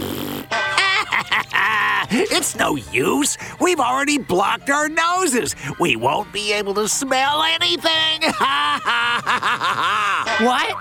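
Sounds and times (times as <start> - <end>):
loud drawn-out sputtering fart: 0.0 - 0.7
laughter: 0.8 - 2.4, 8.2 - 10.7
speech: 1.4 - 10.7.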